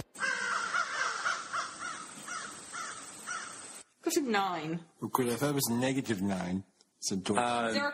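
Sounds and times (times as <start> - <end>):
ravens cawing: 0.1 - 3.9
speech: 4.1 - 7.9.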